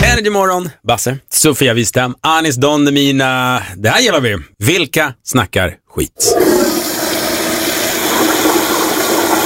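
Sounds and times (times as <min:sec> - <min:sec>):
speech: 0:00.2 - 0:06.8
long toilet flush: 0:06.2 - 0:09.4.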